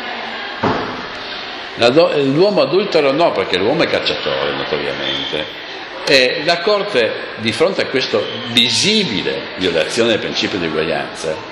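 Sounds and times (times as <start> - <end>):
door closing thud: 0.6 - 1.2
speech: 1.8 - 11.5.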